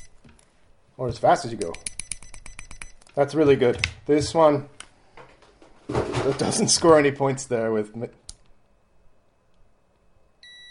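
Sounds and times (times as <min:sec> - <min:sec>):
faint hum: 0:00.0 - 0:10.6
speech: 0:01.0 - 0:01.9, 0:03.2 - 0:04.8, 0:06.3 - 0:08.2
digital multimeter continuity beep: 0:01.6 - 0:03.0, 0:10.4 - 0:10.6.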